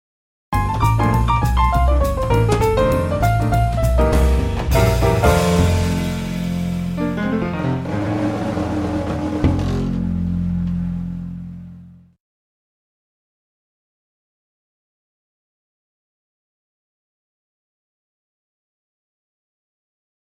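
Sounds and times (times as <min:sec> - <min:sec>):
classical jazz music: 0:00.6 - 0:12.1.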